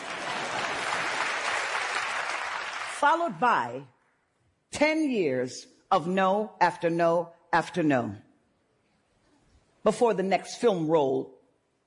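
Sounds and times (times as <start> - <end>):
audience clapping at a talk: 0.0 - 3.3
speech: 3.0 - 4.0, 4.8 - 8.3, 9.8 - 11.4.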